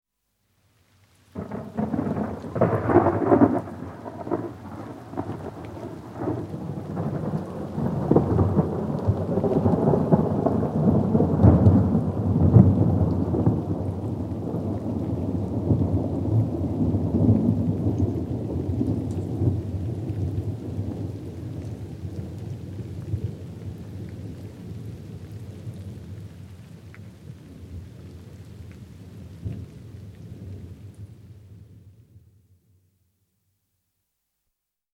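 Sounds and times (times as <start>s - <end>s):
rain: 0.2s - 33.0s
thunder rolling: 1.4s - 21.1s.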